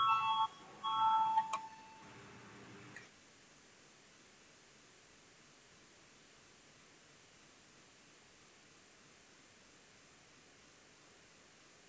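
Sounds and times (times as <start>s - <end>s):
electronic parliamentary voting bell chiming before a vote: 0.0s - 2.0s.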